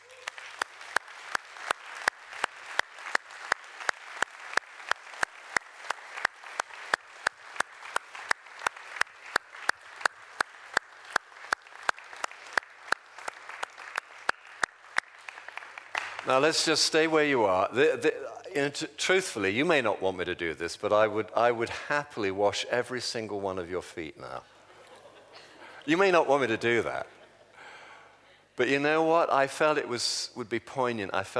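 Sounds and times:
audience applauding: 0:00.0 - 0:17.0
sharp evenly spaced claps: 0:00.0 - 0:17.0
speech: 0:16.3 - 0:24.5, 0:25.8 - 0:27.2, 0:28.6 - 0:31.3
laughter: 0:24.4 - 0:27.6.

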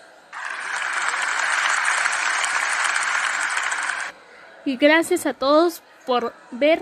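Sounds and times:
audience applause: 0:00.4 - 0:04.1
speech: 0:04.7 - 0:06.8.

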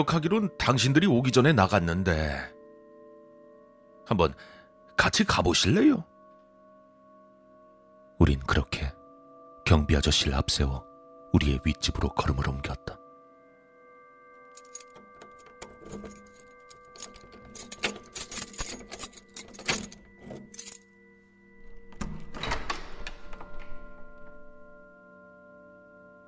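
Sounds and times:
speech: 0:00.0 - 0:02.6, 0:04.1 - 0:06.1, 0:08.2 - 0:09.0, 0:09.7 - 0:13.0
keys jangling: 0:14.5 - 0:20.9
key turning in upstairs apartment door lock: 0:14.6 - 0:20.8, 0:21.6 - 0:24.4.

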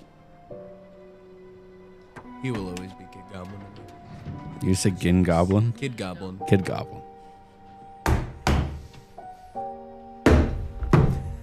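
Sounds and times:
speech: 0:02.4 - 0:07.1
banging on plywood: 0:08.0 - 0:09.0, 0:10.2 - 0:11.4.

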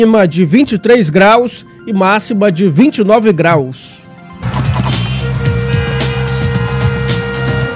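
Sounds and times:
speech: 0:00.0 - 0:04.0
busy road traffic with passing vehicles: 0:04.4 - 0:07.7.

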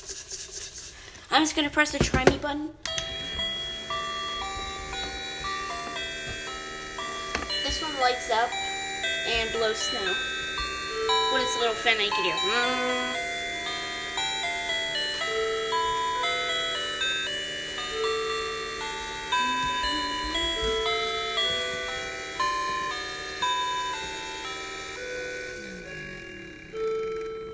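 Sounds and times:
speech: 0:01.4 - 0:02.9, 0:08.0 - 0:08.6, 0:09.3 - 0:10.3, 0:11.0 - 0:13.2
little clock playing a tinkling tune: 0:02.8 - 0:27.5.

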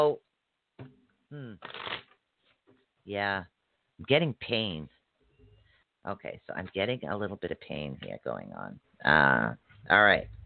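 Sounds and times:
speech: 0:00.0 - 0:00.2, 0:00.8 - 0:01.9, 0:03.1 - 0:05.0, 0:06.0 - 0:10.4
deck of tarot cards shuffling: 0:01.6 - 0:02.6.

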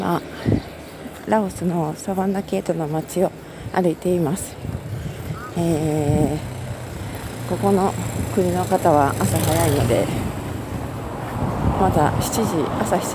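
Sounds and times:
morning street traffic with engines of passing vehicles: 0:00.0 - 0:13.1
speech: 0:00.1 - 0:00.6, 0:01.3 - 0:04.8, 0:05.6 - 0:06.5, 0:07.5 - 0:10.3, 0:11.8 - 0:13.1.

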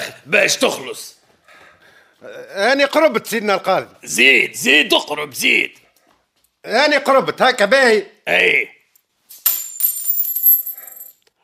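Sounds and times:
speech: 0:00.2 - 0:01.2, 0:02.2 - 0:05.8, 0:06.6 - 0:08.8
coins jingling and clinking together: 0:09.3 - 0:11.2.

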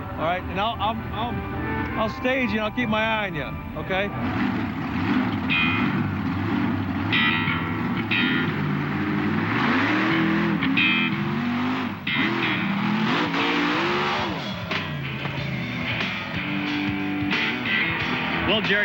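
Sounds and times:
vehicle engine revving as it jumps over parked cars: 0:00.0 - 0:18.8
speech: 0:00.2 - 0:04.6, 0:18.6 - 0:18.8.

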